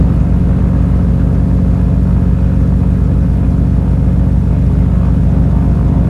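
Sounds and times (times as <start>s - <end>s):
Morava engines heard from right side of cockpit: 0.0s - 6.0s.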